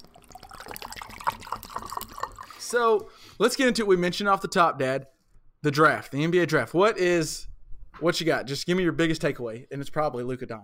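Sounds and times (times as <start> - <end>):
liquor pouring into a glass: 0.0 - 3.1
speech: 2.7 - 10.6.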